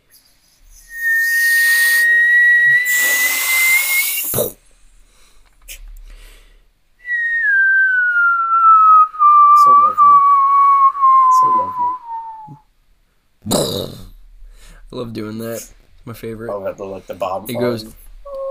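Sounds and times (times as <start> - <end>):
person whistling: 0.7 - 4.5, 7.0 - 12.7
speech: 15.2 - 18.0.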